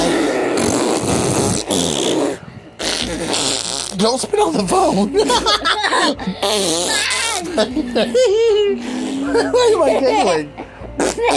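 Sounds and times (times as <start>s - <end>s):
loud raspy fart sound: 0.0s - 4.3s, 6.4s - 7.5s, 8.8s - 9.3s, 11.0s - 11.3s
speech: 4.0s - 10.6s, 11.2s - 11.3s
laughter: 4.7s - 6.7s, 7.3s - 10.8s.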